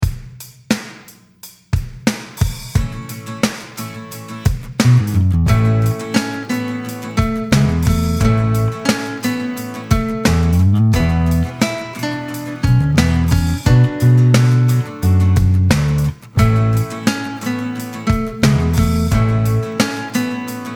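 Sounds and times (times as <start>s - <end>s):
original guitar: 2.5s - 20.7s.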